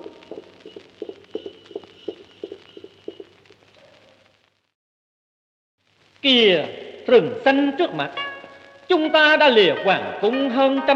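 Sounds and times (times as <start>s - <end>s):
saddled horse hooves clip-clopping at a walk: 0.0s - 4.0s
speech: 6.2s - 8.2s, 8.9s - 10.9s.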